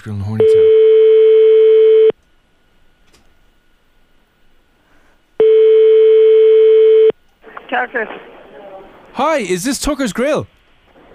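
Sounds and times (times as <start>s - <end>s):
speech: 0.0s - 0.8s, 7.8s - 8.3s, 9.2s - 10.6s
ringback tone of an outgoing phone call: 0.4s - 2.1s, 5.4s - 7.1s.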